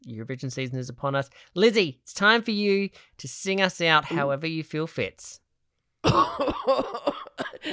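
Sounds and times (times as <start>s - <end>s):
speech: 0.0s - 5.4s, 6.0s - 7.7s
person coughing rough and throaty: 6.0s - 7.7s.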